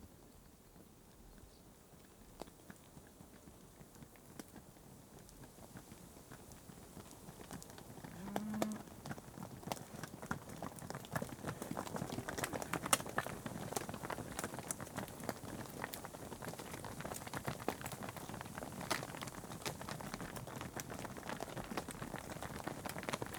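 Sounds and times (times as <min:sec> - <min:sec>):
cattle hoofbeats on tarmac: 0:07.4 - 0:23.3.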